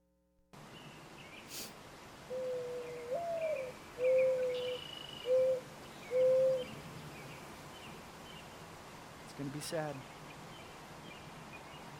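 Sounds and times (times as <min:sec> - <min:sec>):
faint outdoor hiss: 0:00.6 - 0:11.9
mourning dove cooing: 0:02.3 - 0:06.7
speech: 0:09.4 - 0:10.2.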